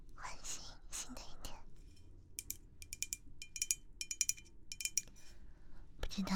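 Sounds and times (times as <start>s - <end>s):
soft whispering: 0.2s - 1.7s
glass bottle of passion fruit sparkling water clinking and tapping: 2.4s - 5.1s
speech: 6.2s - 6.3s.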